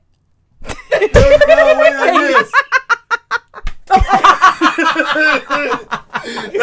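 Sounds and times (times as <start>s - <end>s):
several people laughing and giggling: 0.7s - 6.6s
hand slapping a face: 3.6s - 4.0s.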